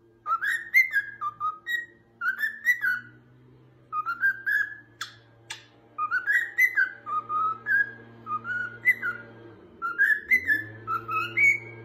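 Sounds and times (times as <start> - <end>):
steady low hum: 0.0 - 11.8
cockatiel whistling rising and falling notes: 0.2 - 3.2, 3.9 - 11.8
sharp clicks: 5.0 - 5.7.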